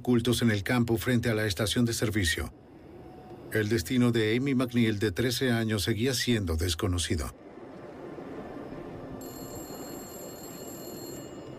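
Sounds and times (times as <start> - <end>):
speech: 0.0 - 2.6, 3.5 - 7.4
constant low rumble: 0.0 - 11.5
public payphone ringing with electronic bell tone: 9.2 - 11.5.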